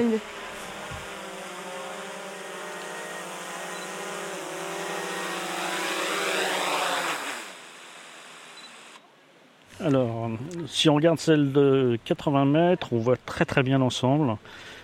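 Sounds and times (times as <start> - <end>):
speech: 0.0 - 0.4, 9.8 - 14.8
small camera drone propellers buzzing while descending: 0.0 - 9.0.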